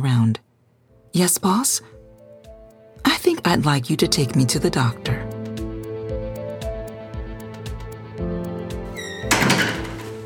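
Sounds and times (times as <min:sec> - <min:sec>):
speech: 0:00.0 - 0:00.4, 0:01.1 - 0:02.0, 0:03.3 - 0:05.3
music: 0:00.9 - 0:10.2
door banging open: 0:09.0 - 0:10.2.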